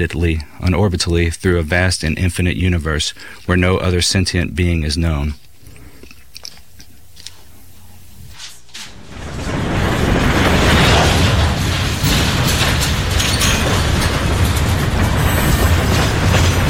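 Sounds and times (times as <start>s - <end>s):
speech: 0.0s - 5.4s
faint metallic rattling and clatter of a train: 8.8s - 16.6s
train rumbling along the rails: 9.0s - 16.6s.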